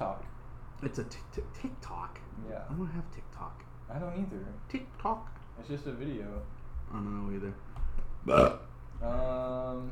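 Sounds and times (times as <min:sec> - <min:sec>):
speech: 0:00.8 - 0:09.9
person hiccuping: 0:08.2 - 0:08.7.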